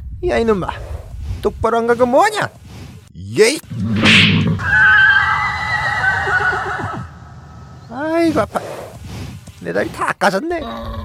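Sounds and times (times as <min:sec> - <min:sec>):
speech: 0:00.2 - 0:02.6, 0:03.2 - 0:04.9, 0:08.0 - 0:08.8, 0:09.6 - 0:11.0
donkey braying: 0:04.6 - 0:07.8.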